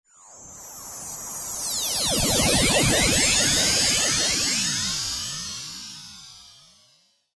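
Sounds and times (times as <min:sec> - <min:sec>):
Roland V-Synth ring modulator factory patch: 0:01.6 - 0:06.0.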